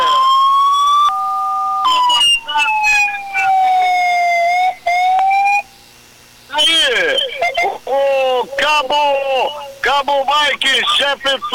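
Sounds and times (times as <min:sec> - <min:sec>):
fire truck siren at a fire brigade station in Orleans: 0:00.0 - 0:05.6
laughter: 0:07.2 - 0:11.5
speech: 0:10.0 - 0:11.5.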